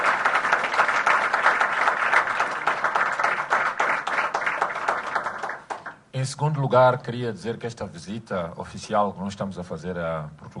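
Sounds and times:
sustained applause from a large crowd: 0.0s - 6.0s
speech: 6.2s - 10.4s.

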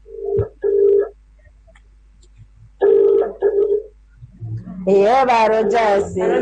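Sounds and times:
telephone ringback tone from an outgoing call: 2.8s - 3.8s
speech: 4.9s - 6.4s.

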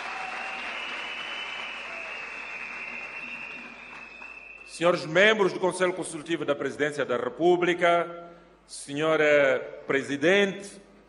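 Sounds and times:
audience applause: 0.0s - 4.7s
speech: 4.8s - 10.8s.

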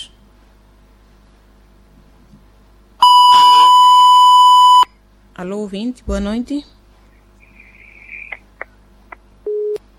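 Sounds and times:
faint high whistle on a dropped telephone line: 3.0s - 4.9s
short steady mid-pitched telephone beep after a call dropped: 3.0s - 4.9s, 9.5s - 9.8s
speech: 5.4s - 6.8s.

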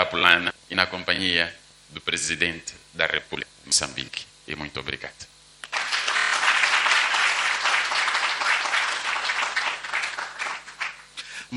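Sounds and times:
speech: 0.2s - 5.3s
audience applause: 5.6s - 11.1s.

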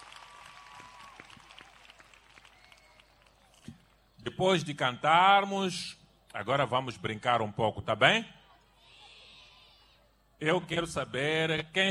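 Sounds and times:
crowd clapping: 0.0s - 3.6s
speech: 4.2s - 8.4s, 10.4s - 11.8s.

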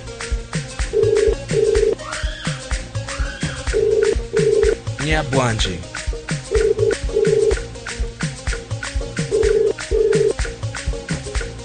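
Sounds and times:
steady thumping beat: 0.2s - 2.0s, 2.6s - 11.6s
looping electronic phone ringtone melody: 1.0s - 2.0s, 3.7s - 4.8s, 6.5s - 7.6s, 9.2s - 10.4s
speech: 5.1s - 6.0s.

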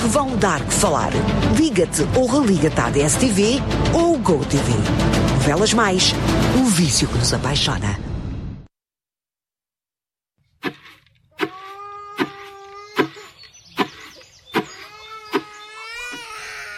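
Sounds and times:
speech: 0.1s - 8.0s
infant crying in high-pitched wails: 11.4s - 13.2s, 14.8s - 16.7s.

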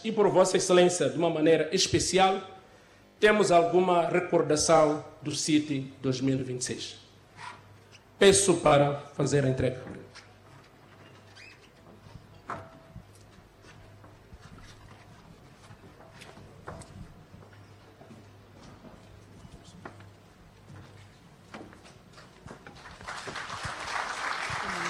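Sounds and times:
speech: 0.0s - 2.6s, 3.2s - 7.0s, 8.2s - 10.0s
low room hum in a conference hall: 0.0s - 24.8s
large audience clapping in a conference hall in Tete province: 22.7s - 24.8s.

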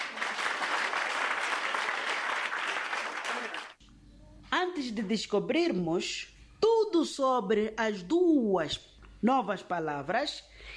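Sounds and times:
group applauding with many hands clapping: 0.0s - 3.8s
speech: 4.8s - 6.3s, 6.9s - 10.7s.

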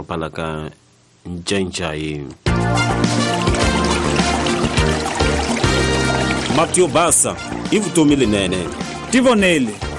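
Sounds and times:
speech: 0.0s - 5.0s, 6.6s - 9.9s
chlorine-treated water poured into a clean container: 2.7s - 9.9s.

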